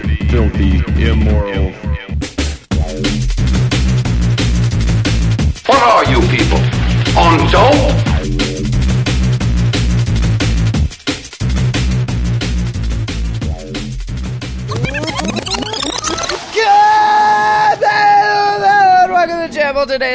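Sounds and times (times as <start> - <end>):
loud driving music track: 0.0 - 16.8
speech: 0.3 - 1.9, 6.1 - 8.4, 19.8 - 20.1
people yelling and screaming: 16.0 - 19.6.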